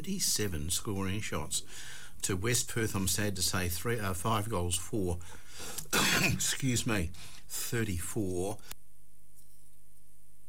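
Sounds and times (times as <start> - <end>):
speech: 0.0 - 8.8
person clearing throat: 5.9 - 6.5
person coughing: 5.9 - 6.6.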